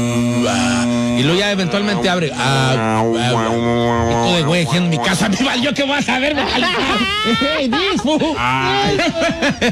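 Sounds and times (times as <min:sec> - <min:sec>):
person doing a buzzing lip trill as a vocal warm-up: 0:00.0 - 0:05.8
speech: 0:00.5 - 0:09.6
laughter: 0:04.2 - 0:09.6.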